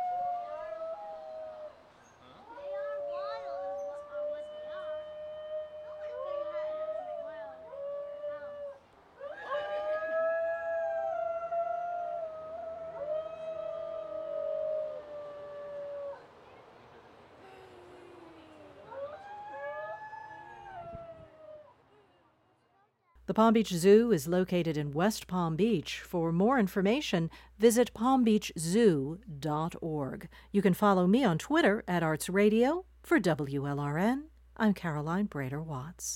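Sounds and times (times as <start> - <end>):
group of singing dogs howling in chorus at a zoo: 0.0 - 1.8, 2.4 - 16.3, 18.8 - 21.8
speech: 23.3 - 36.1.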